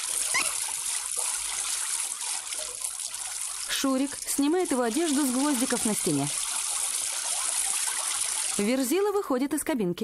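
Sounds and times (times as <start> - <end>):
person spitting out a mouthful of water: 0.0 - 2.5
running shower water: 0.0 - 8.9
speech: 3.8 - 6.4, 8.6 - 10.0.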